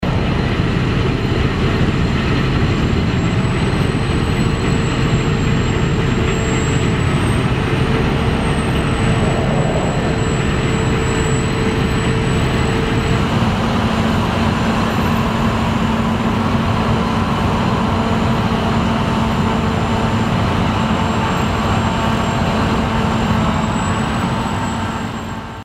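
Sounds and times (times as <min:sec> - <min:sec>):
Claas combine harvester: 0:00.0 - 0:25.6.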